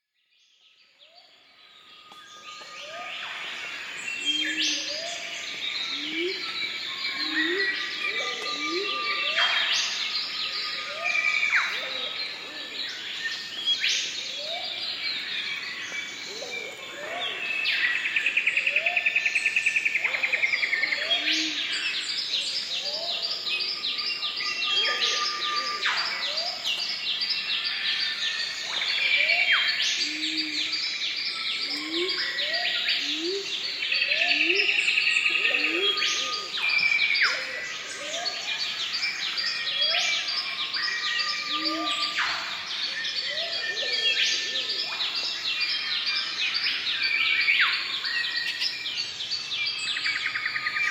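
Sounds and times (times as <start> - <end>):
tropical rainforest biodiversity soundscape: 0.7 - 50.8.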